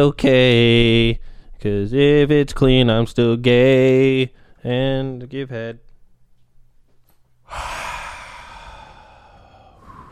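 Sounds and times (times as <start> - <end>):
speech: 0.0 - 5.8, 7.5 - 7.9
long breathy yawn: 7.5 - 10.1.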